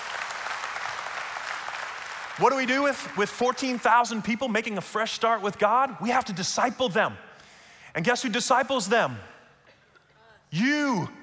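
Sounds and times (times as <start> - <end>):
large audience applause: 0.0 - 3.8
speech: 2.4 - 7.3, 7.9 - 9.3, 10.5 - 11.2.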